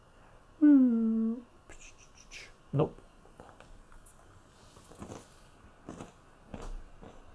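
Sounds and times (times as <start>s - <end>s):
speech: 2.7s - 3.0s
chewing walnuts and raisins: 4.8s - 7.3s.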